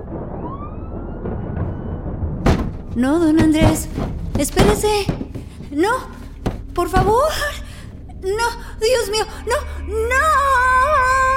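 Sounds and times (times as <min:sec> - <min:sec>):
police patrol car siren wailing: 0:00.0 - 0:02.2
low rumble: 0:02.0 - 0:11.3
speech: 0:02.9 - 0:06.2, 0:06.8 - 0:07.6, 0:08.2 - 0:10.7.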